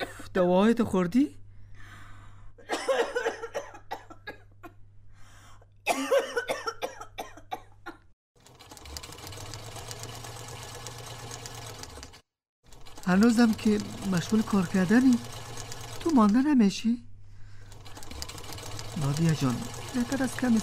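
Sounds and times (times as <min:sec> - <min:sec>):
speech: 0:00.4 - 0:01.4, 0:13.1 - 0:15.4, 0:16.0 - 0:17.1, 0:19.0 - 0:20.6
person coughing harshly: 0:02.6 - 0:04.7, 0:05.8 - 0:08.1.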